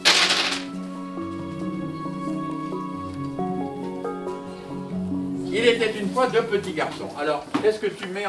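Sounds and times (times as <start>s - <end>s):
six-sided picture dice thrown and clattering: 0.0s - 0.7s
soft melodic tune: 0.0s - 8.0s
speech: 5.5s - 8.2s.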